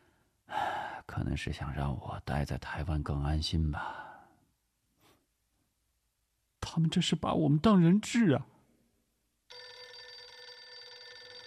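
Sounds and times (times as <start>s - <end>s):
speech: 1.1s - 4.0s, 6.7s - 8.5s
telephone ringing with loud electronic trill: 9.5s - 11.4s.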